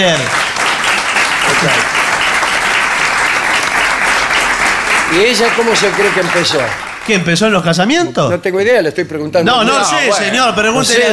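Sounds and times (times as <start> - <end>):
speech: 0.0 - 0.4, 1.5 - 2.0, 5.1 - 11.1
crowd applauding: 0.0 - 7.9.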